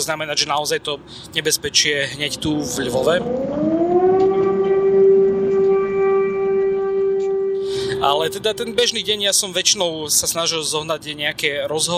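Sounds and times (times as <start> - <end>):
speech: 0.0 - 3.7, 8.0 - 11.9
low rumble: 0.2 - 11.9
air raid siren wailing: 1.8 - 9.8.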